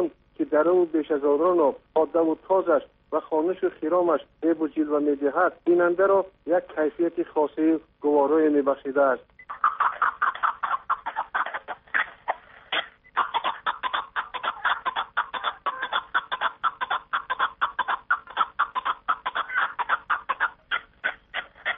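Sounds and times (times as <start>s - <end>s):
speech: 0.5s - 9.4s
Caspian snowcock calling with clucking notes: 9.4s - 21.7s.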